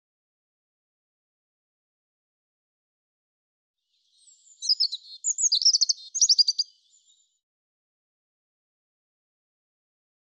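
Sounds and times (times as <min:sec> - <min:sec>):
European robin warbling phrase with twisting whistles and tinkling notes: 0:04.1 - 0:07.3.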